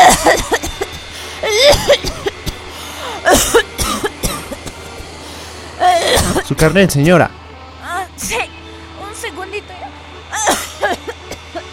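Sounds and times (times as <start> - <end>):
woman faking a violent fit of coughing: 0.0 - 2.6, 3.2 - 4.8, 5.8 - 6.7, 10.3 - 11.6
woman's strained raspy breaths: 0.9 - 3.3, 4.4 - 6.2
speech: 6.6 - 7.4.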